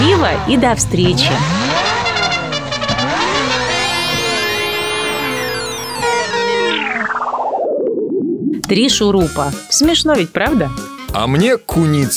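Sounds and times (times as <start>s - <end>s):
cartoon car driving off with wavering engine revving: 0.0s - 8.9s
speech: 0.2s - 2.0s, 8.7s - 12.1s.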